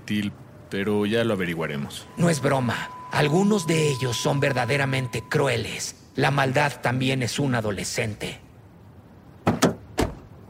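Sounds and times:
speech: 0:00.1 - 0:08.4
car door shutting as a man gets into the car: 0:09.4 - 0:10.3.

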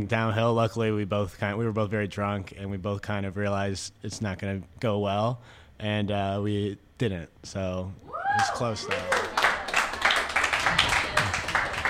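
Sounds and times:
speech: 0:00.0 - 0:09.2
audience clapping: 0:08.4 - 0:11.8.

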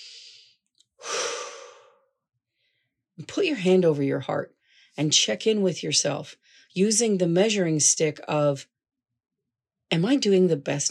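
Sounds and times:
deep breath in and out: 0:00.0 - 0:03.0, 0:06.4 - 0:06.7
speech: 0:03.2 - 0:08.7, 0:09.9 - 0:10.8.

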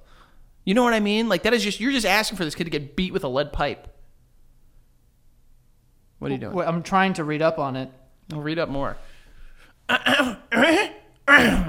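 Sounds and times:
speech: 0:00.6 - 0:04.0, 0:06.2 - 0:09.1, 0:09.9 - 0:11.6
throat clearing: 0:09.9 - 0:11.6.

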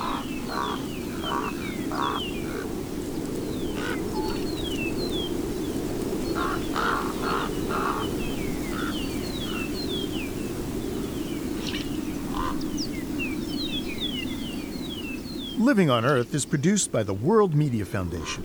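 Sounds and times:
common raven giving short hoarse calls at a desert ranch in New Mexico: 0:00.0 - 0:04.6, 0:06.2 - 0:09.8, 0:12.2 - 0:12.6, 0:15.7 - 0:18.4
steady wind noise: 0:00.0 - 0:17.3
western meadowlarks and mockingbirds singing whistled sliding songs at dawn: 0:00.0 - 0:18.4
speech: 0:15.7 - 0:18.4.

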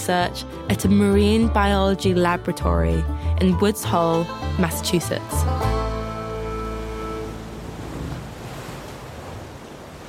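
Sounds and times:
speech: 0:00.0 - 0:05.6
humming tone: 0:04.3 - 0:08.2
Atlantic Ocean waves washing against a rocky shoreline in Woods Hole, Massachusetts: 0:06.0 - 0:10.0.

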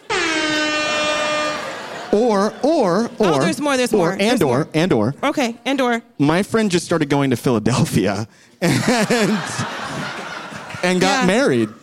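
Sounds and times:
air horn blast: 0:00.0 - 0:02.0
laughter: 0:01.0 - 0:03.7, 0:08.6 - 0:11.8
speech: 0:02.6 - 0:09.8, 0:10.8 - 0:11.8.

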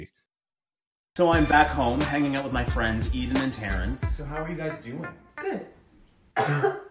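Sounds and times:
speech: 0:01.2 - 0:05.7, 0:06.4 - 0:06.8
person coughing: 0:06.4 - 0:06.9.

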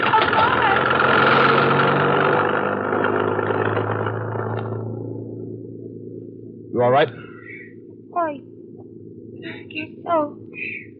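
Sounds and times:
rattling clatter of truck: 0:00.0 - 0:05.6
truck engine roaring speeding down an alley: 0:00.0 - 0:10.9
speech: 0:06.8 - 0:07.2.

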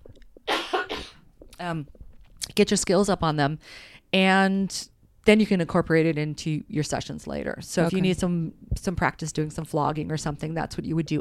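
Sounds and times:
person coughing: 0:00.5 - 0:01.2
speech: 0:01.6 - 0:02.0, 0:02.6 - 0:11.1.

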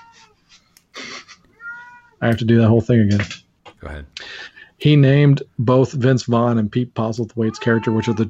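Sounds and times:
cat meowing: 0:00.0 - 0:00.4, 0:01.5 - 0:02.2, 0:07.5 - 0:08.2
speech: 0:02.2 - 0:04.2, 0:04.8 - 0:08.2.

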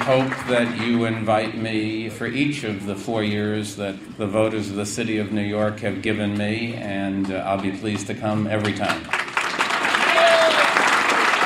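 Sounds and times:
audience applauding after a political speech in New York: 0:00.0 - 0:01.6, 0:08.6 - 0:11.4
speech: 0:00.1 - 0:09.2.

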